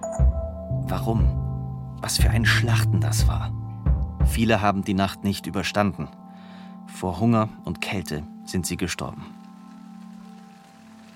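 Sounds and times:
speech: 0:00.9 - 0:01.4, 0:02.0 - 0:03.6, 0:04.3 - 0:06.2, 0:06.9 - 0:09.4
steady rain spattering on a surface: 0:08.1 - 0:11.1.

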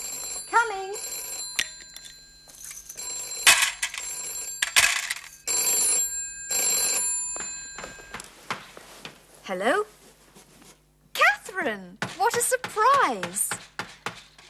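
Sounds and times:
telephone ringing: 0:00.0 - 0:08.3
speech: 0:09.5 - 0:10.0, 0:11.6 - 0:13.6.

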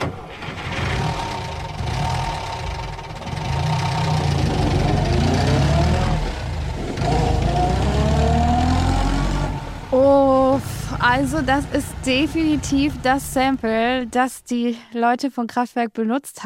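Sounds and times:
car engine cranking, starting and driving off shifting gears: 0:00.0 - 0:14.4
speech: 0:11.1 - 0:16.4.

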